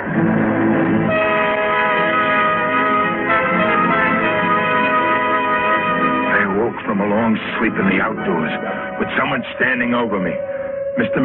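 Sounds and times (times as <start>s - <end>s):
train rumbling: 0.0s - 11.2s
speech: 7.3s - 11.2s.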